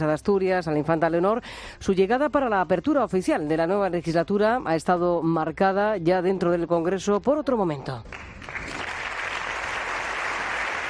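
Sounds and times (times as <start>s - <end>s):
speech: 0.0s - 8.3s
large crowd applauding in a parliament chamber: 8.1s - 10.8s.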